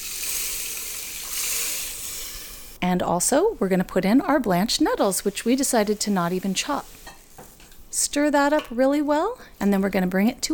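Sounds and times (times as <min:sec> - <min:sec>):
vegetable stock poured into a pot of rice and dandelion greens: 0:00.0 - 0:02.6
speech: 0:02.8 - 0:07.0, 0:08.0 - 0:10.5.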